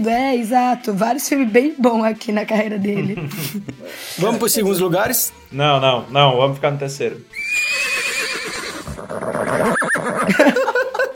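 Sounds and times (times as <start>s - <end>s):
speech: 0.0s - 7.6s
laughter: 2.9s - 3.8s, 10.2s - 11.1s
person imitating a horse neigh: 7.3s - 10.4s.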